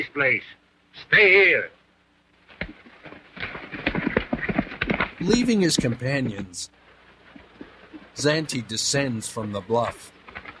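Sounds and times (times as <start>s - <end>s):
speech: 0.0s - 1.8s, 5.2s - 6.8s, 8.2s - 10.2s
horse hooves clip-clopping near a small corral: 2.6s - 6.6s, 7.3s - 8.2s.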